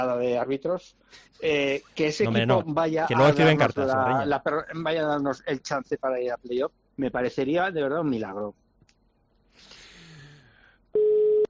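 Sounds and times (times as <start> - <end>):
speech: 0.0 - 8.6
telephone busy tone after a call is cut off: 11.0 - 11.4.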